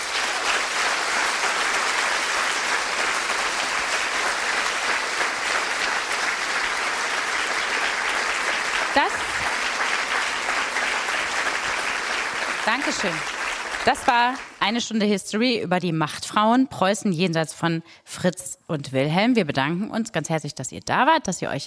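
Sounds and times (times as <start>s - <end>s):
audience applause at the end of a live history talk: 0.0s - 14.7s
speech: 12.7s - 21.6s.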